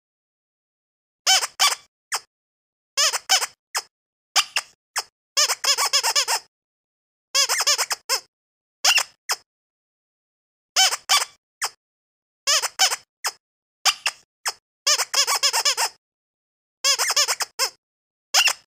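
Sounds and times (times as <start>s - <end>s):
squeaky dog toy: 1.3s - 2.3s, 3.0s - 6.5s, 7.3s - 9.5s, 10.8s - 11.8s, 12.5s - 16.0s, 16.8s - 18.6s.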